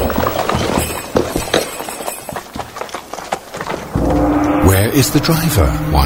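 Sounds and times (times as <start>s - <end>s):
several horses' hooves trotting: 0.0s - 4.2s
speech: 5.0s - 6.0s.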